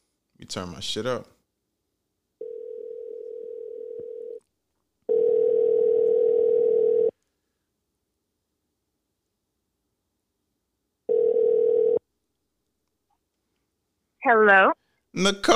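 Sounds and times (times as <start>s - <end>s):
speech: 0.4s - 1.4s, 14.4s - 15.5s
phone ringback tone while calling a friend: 2.4s - 4.4s, 5.1s - 7.1s, 11.1s - 12.0s.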